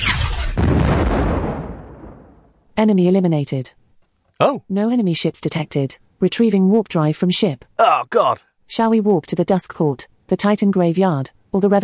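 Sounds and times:
video game cannon fire blast: 0.0s - 2.5s
heavy boom rolling into a deep rumbling explosion: 0.0s - 2.6s
speech: 2.8s - 3.8s, 4.4s - 11.8s.

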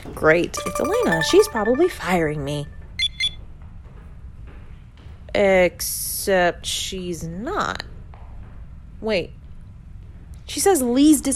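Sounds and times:
speech: 0.0s - 2.8s, 5.3s - 7.9s, 9.0s - 9.4s, 10.5s - 11.3s
cell phone ringtone chirp: 0.6s - 2.6s.

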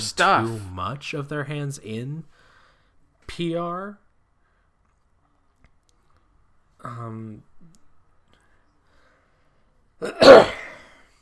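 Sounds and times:
speech: 0.1s - 2.4s, 3.3s - 4.0s, 6.8s - 7.5s, 10.0s - 10.6s
person clearing throat from something stuck in the throat: 10.0s - 11.0s.

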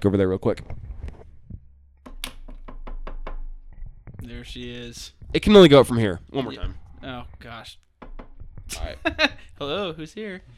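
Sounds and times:
speech: 0.0s - 0.8s, 4.2s - 7.8s, 8.7s - 10.5s
knuckles knocking on wood: 2.0s - 3.8s, 8.0s - 8.7s.

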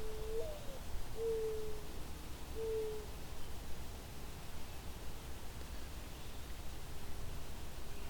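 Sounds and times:
mourning dove cooing: 0.0s - 1.8s
faint outdoor rustle: 0.0s - 8.0s.

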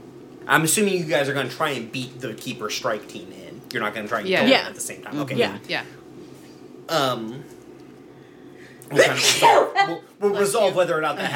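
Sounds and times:
speech: 0.5s - 6.0s, 6.9s - 7.6s, 8.9s - 11.3s
person sneezing: 8.9s - 9.8s.

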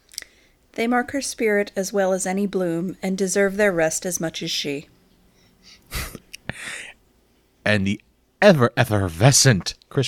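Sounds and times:
speech: 0.8s - 5.0s, 7.7s - 10.0s
person sneezing: 5.7s - 7.0s.

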